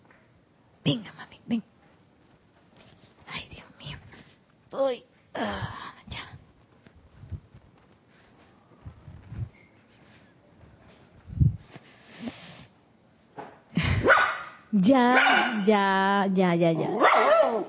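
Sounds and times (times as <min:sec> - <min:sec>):
speech: 0:00.8 - 0:01.7, 0:14.9 - 0:17.6
dog barking: 0:14.0 - 0:15.6, 0:17.0 - 0:17.6.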